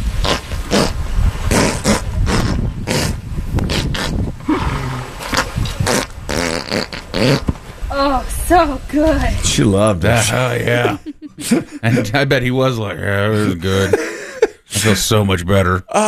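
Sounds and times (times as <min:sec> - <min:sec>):
horse passing gas: 0:00.0 - 0:07.7
speech: 0:07.2 - 0:07.5, 0:08.5 - 0:14.1, 0:14.8 - 0:16.0
laughter: 0:10.0 - 0:15.2.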